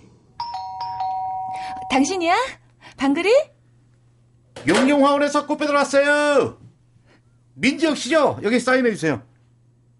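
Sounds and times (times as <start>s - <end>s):
electronic doorbell chiming: 0.4s - 2.2s
speech: 1.9s - 3.5s, 4.6s - 6.6s, 7.6s - 9.3s.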